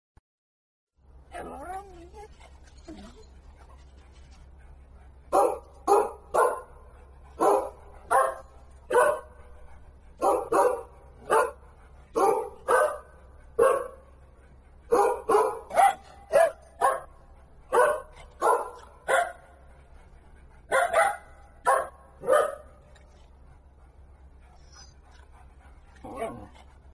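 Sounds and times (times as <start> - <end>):
dog barking: 5.3 - 6.8, 7.4 - 9.4, 10.2 - 11.6, 12.2 - 14.1, 14.9 - 19.6, 20.7 - 22.8.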